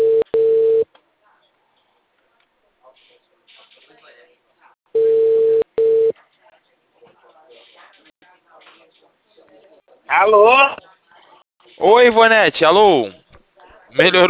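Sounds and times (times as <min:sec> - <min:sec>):
telephone tone while a manual call is placed: 0:00.0 - 0:00.8, 0:05.0 - 0:06.1
speech: 0:10.2 - 0:10.8, 0:11.8 - 0:13.2, 0:13.9 - 0:14.2.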